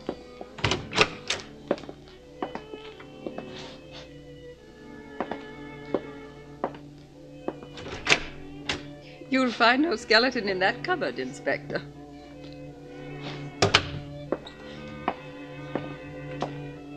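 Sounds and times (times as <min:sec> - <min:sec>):
bedroom door being opened: 0:00.2 - 0:02.5, 0:07.5 - 0:09.0, 0:13.2 - 0:16.6
sharp clicks from the bedroom door latch and handle: 0:00.6 - 0:01.5, 0:07.7 - 0:08.9
speech: 0:09.3 - 0:11.9.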